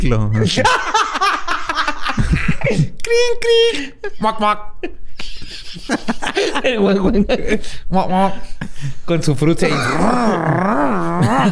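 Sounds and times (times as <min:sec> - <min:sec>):
speech: 0:00.0 - 0:01.3, 0:02.6 - 0:04.7, 0:05.8 - 0:11.5
laughter: 0:00.4 - 0:02.9, 0:03.7 - 0:07.8
voice imitating a revving motorcycle engine: 0:09.7 - 0:11.5.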